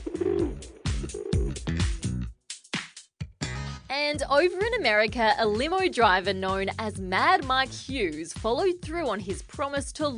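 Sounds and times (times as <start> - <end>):
pigeons cooing with low throaty calls: 0.0 - 1.6
speech: 4.0 - 10.1.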